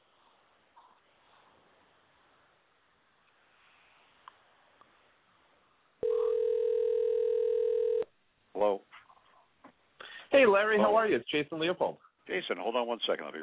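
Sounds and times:
faint hiss: 0:00.0 - 0:13.4
telephone dial tone while dialing out: 0:06.0 - 0:08.1
speech: 0:10.4 - 0:13.4.

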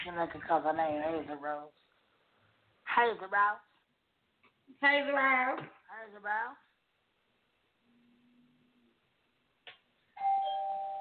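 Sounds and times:
speech: 0:00.0 - 0:01.8, 0:02.9 - 0:03.7, 0:04.7 - 0:06.7
home doorbell chiming: 0:10.2 - 0:10.9.

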